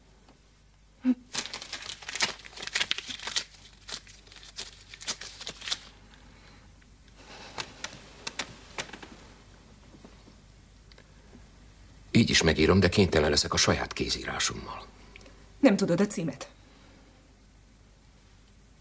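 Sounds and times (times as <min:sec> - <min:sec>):
paper crumpling: 0:01.2 - 0:06.2, 0:07.3 - 0:09.2
speech: 0:12.2 - 0:15.0, 0:15.6 - 0:16.6.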